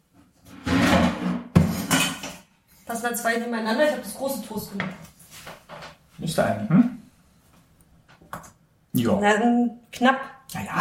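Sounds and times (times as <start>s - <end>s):
frying pan sharp clunk and ringing clatter: 0.7s - 2.4s
speech: 3.0s - 5.1s, 6.2s - 6.9s, 9.0s - 10.8s.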